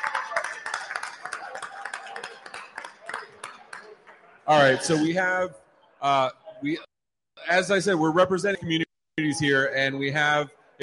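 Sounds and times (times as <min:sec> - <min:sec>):
small crowd applauding: 0:00.0 - 0:04.7
speech: 0:04.5 - 0:06.8, 0:07.5 - 0:10.8.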